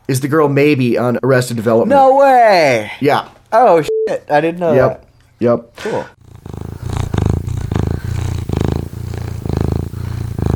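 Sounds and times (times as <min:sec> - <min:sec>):
speech: 0:00.1 - 0:06.2
cat purring: 0:06.2 - 0:10.5.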